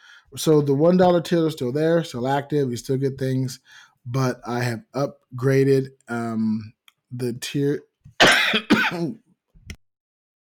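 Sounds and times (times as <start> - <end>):
speech: 0.3 - 9.2
harsh cough into microphone: 8.2 - 9.2
throat clearing into microphone: 8.2 - 9.2.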